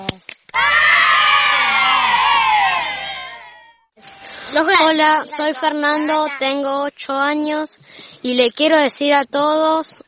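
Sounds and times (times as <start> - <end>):
crowd of children cheering and shouting at a library event: 0.5 - 3.8
speech: 4.6 - 10.0.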